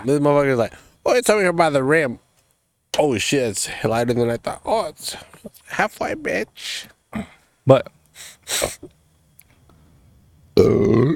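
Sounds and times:
speech: 0.0 - 2.2, 3.0 - 9.0, 10.6 - 11.1
short breathy bursts: 7.2 - 8.9
loud burp: 10.6 - 11.1.

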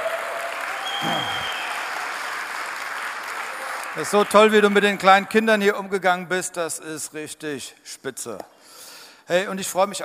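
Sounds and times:
crowd applauding: 0.0 - 5.1
brief voice-like tone: 1.0 - 1.5
speech: 1.0 - 1.6, 4.0 - 8.6, 9.3 - 10.0.

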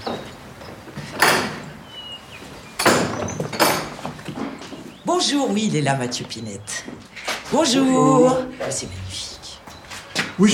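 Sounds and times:
door opening with latch and frame rattling and scraping: 1.1 - 1.8, 2.8 - 4.6
speech: 5.2 - 9.3, 10.4 - 10.5.

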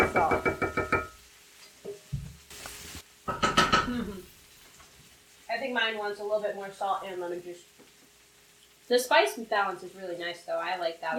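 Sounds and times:
stirring and scraping in a pan: 0.0 - 5.4
spiced mixture sizzling in a pan: 0.0 - 11.1
speech: 5.7 - 7.7, 8.9 - 11.1.

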